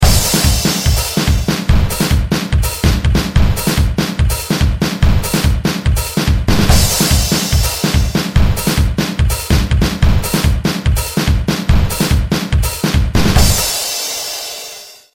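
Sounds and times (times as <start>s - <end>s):
moombahton beat: 0.0s - 14.9s.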